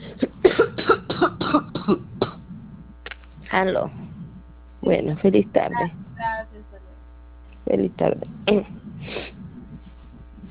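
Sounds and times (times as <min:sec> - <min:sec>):
coughing fit over a telephone: 0:00.0 - 0:02.8
speech: 0:03.6 - 0:04.0, 0:04.9 - 0:06.0, 0:07.6 - 0:08.8.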